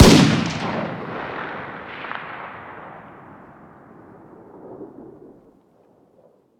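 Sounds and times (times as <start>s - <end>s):
distant 308 rifle fire outdoors: 0.0s - 4.3s.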